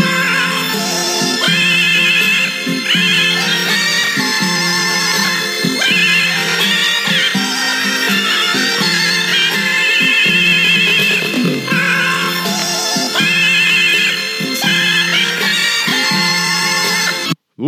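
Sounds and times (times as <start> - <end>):
distorted record playing music: 0.0 - 17.4
warped high-pitched singing voice on a record: 0.0 - 17.6.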